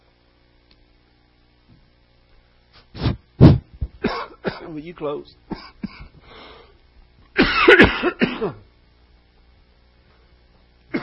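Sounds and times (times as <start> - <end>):
person coughing: 3.4 - 4.8, 5.5 - 6.1, 7.4 - 8.6
speech: 4.7 - 5.7, 7.7 - 8.7.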